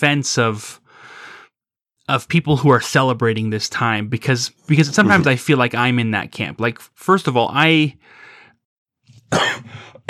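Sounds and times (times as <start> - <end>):
speech: 0.0 - 0.8, 2.1 - 8.3, 9.3 - 10.0
harsh coughs: 5.0 - 5.3, 9.3 - 10.0.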